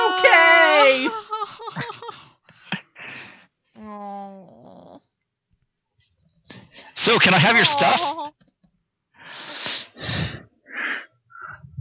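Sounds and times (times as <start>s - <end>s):
laughter: 0.0s - 2.4s, 7.0s - 8.3s
heavy raspy wheezing breathing into a microphone: 1.4s - 3.6s, 9.2s - 11.6s
speech: 7.0s - 8.2s.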